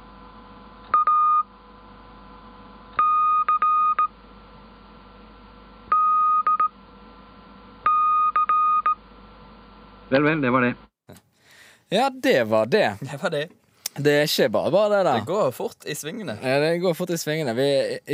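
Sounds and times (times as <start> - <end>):
Morse code test group sent as high-pitched electronic beeps: 0.9 - 1.5, 3.0 - 4.1, 5.9 - 6.7, 7.8 - 9.0
speech: 10.1 - 10.9, 11.9 - 18.1.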